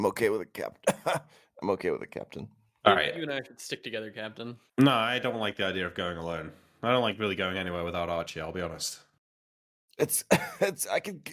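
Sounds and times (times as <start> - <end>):
speech: 0.0 - 9.1, 10.0 - 11.3
raspy cough: 0.8 - 1.3, 10.2 - 10.7.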